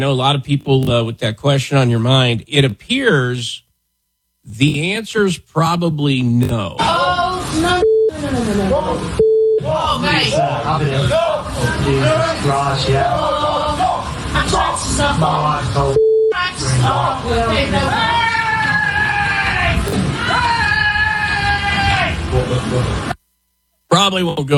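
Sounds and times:
speech: 0.0 - 3.6, 4.5 - 18.2, 22.3 - 23.1, 23.9 - 24.5
people screaming during a tiger attack: 18.0 - 22.2.

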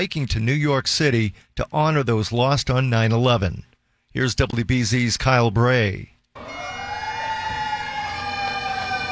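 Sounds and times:
speech: 0.0 - 6.7
fire engine sirens wailing outside a ballpark: 6.4 - 9.1.

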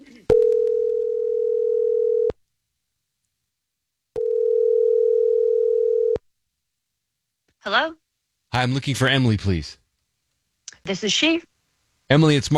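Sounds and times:
electronic phone ring tones on an outgoing call: 0.3 - 2.4, 4.2 - 6.2
speech: 7.7 - 8.0, 8.6 - 9.8, 10.8 - 11.5, 12.1 - 12.5.

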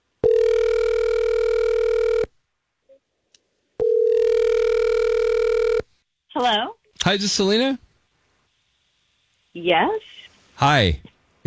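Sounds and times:
outgoing phone call ringback tones: 0.2 - 2.3, 3.8 - 5.8
speech: 6.4 - 7.8, 9.6 - 11.4.

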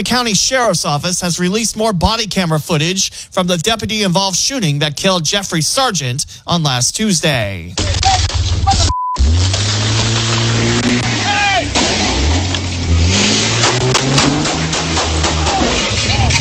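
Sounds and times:
speech: 0.0 - 8.9
truck engine revving while driving: 7.9 - 16.4.

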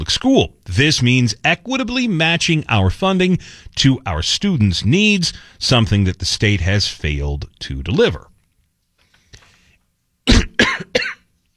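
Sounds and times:
speech: 0.1 - 8.3
harsh coughs: 10.3 - 11.3.

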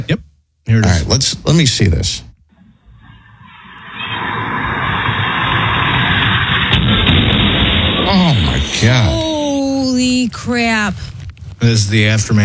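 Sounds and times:
speech: 0.0 - 2.3, 8.8 - 9.3, 10.0 - 12.4
high wavering squealing tones: 2.6 - 5.0
car crashing into a house: 4.1 - 9.0
grinding debris: 4.9 - 9.4.

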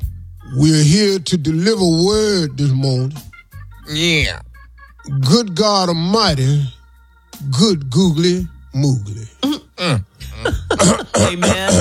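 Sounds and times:
speech: 0.5 - 3.3, 3.9 - 6.8, 7.4 - 11.7
throat clearing during a church service: 9.2 - 11.7.

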